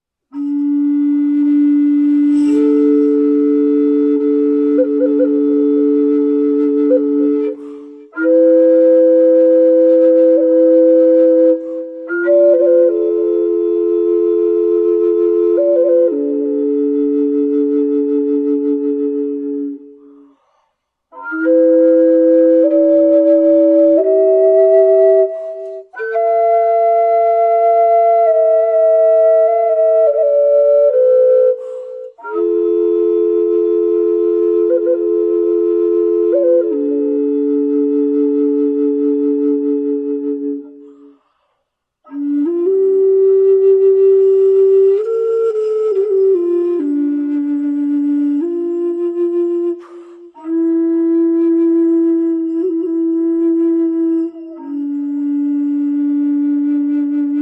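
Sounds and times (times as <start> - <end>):
clay flute: 0.0 - 57.3.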